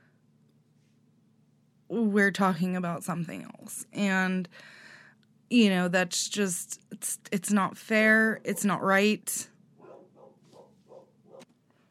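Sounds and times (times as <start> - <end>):
speech: 1.9 - 4.8, 5.5 - 9.5
dogs barking: 9.8 - 11.5.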